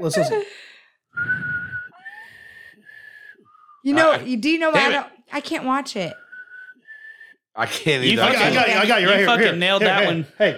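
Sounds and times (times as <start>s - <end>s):
speech: 0.0s - 0.6s, 3.8s - 6.2s, 7.6s - 10.5s
person whistling a tune: 1.1s - 4.0s, 6.1s - 7.4s.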